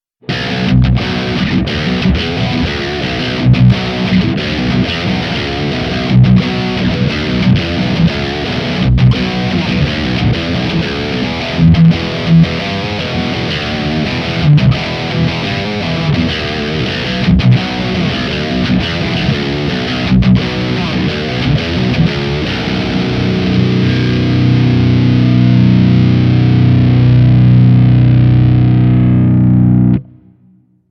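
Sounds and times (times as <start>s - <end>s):
high-gain electric guitar riff on bridge humbucker pickup: 0.2s - 30.8s.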